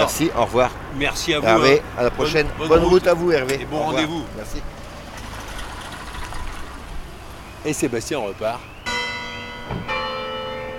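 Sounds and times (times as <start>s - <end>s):
speech: 0.0s - 4.8s, 7.6s - 8.7s, 9.7s - 10.0s
church tower bell at Damigny striking the half hour: 8.9s - 10.7s.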